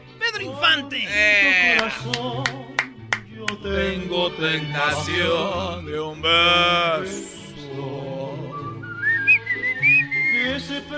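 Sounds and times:
speech: 0:00.4 - 0:02.7, 0:03.6 - 0:07.4
person whistling a lilting melody: 0:08.5 - 0:10.7.

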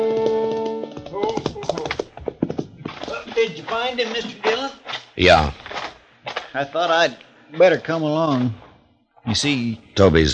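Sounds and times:
horse hooves clip-clopping with rider approaching: 0:00.0 - 0:05.0
speech: 0:03.4 - 0:05.6, 0:06.6 - 0:08.6, 0:09.2 - 0:10.3.

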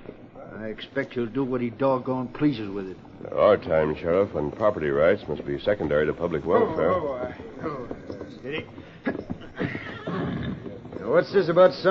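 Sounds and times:
hoofbeats: 0:00.0 - 0:11.8
speech: 0:00.6 - 0:09.2, 0:10.1 - 0:11.8
horse whinnying: 0:06.4 - 0:11.1.

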